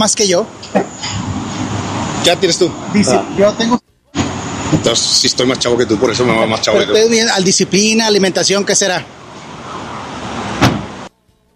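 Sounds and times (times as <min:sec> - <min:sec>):
speech: 0:00.0 - 0:01.4, 0:02.2 - 0:03.8, 0:04.8 - 0:09.2
rushing vehicle noise: 0:00.4 - 0:11.1
car door shutting: 0:10.4 - 0:11.1.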